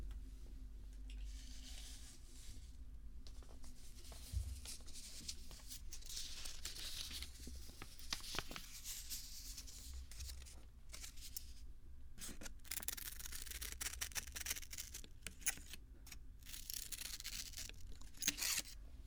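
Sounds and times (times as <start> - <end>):
low hum: 0.0 - 19.0
scissors cutting paper with crisp snips and papery crunches: 12.2 - 18.8.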